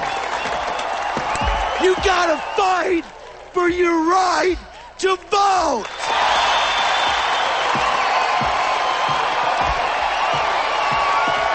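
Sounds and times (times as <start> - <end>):
audience cheering and whooping: 0.0 - 3.5, 5.8 - 11.5
regular low thumps: 1.1 - 5.0, 6.1 - 11.5
speech: 1.8 - 6.2.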